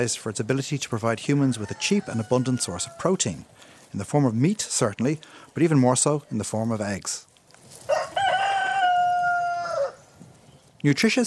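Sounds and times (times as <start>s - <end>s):
speech: 0.0s - 7.3s, 10.8s - 11.2s
rooster crowing: 1.4s - 3.2s, 7.9s - 10.1s.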